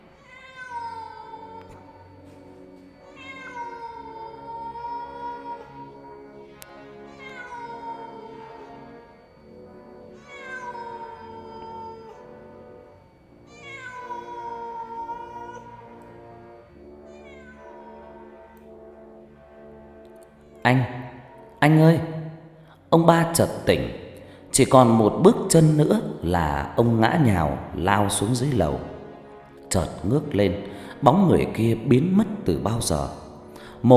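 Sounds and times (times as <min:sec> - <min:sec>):
cat meowing eerily in long wailing cries: 0:00.1 - 0:02.2, 0:03.0 - 0:09.0, 0:10.1 - 0:12.4, 0:13.4 - 0:16.2, 0:17.1 - 0:18.4
speech: 0:20.7 - 0:21.0, 0:21.6 - 0:22.1, 0:22.9 - 0:24.0, 0:24.6 - 0:28.9, 0:29.7 - 0:33.2.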